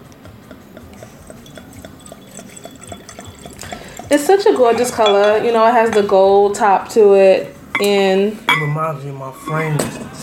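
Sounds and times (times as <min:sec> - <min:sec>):
faint regular ticking: 0:00.1 - 0:04.6
liquid pouring into a glass: 0:01.0 - 0:05.5
speech: 0:04.1 - 0:10.2.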